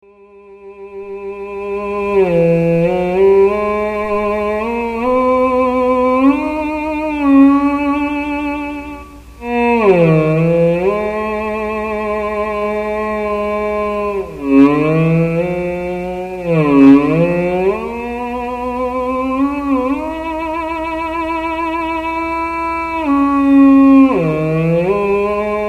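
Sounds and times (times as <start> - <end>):
theremin through resonator: 0.1 - 25.6.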